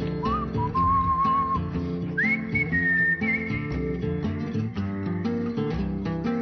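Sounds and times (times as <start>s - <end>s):
people whistling a cheerful tune together: 0.0s - 4.0s
steady instrumental accompaniment: 0.0s - 6.4s.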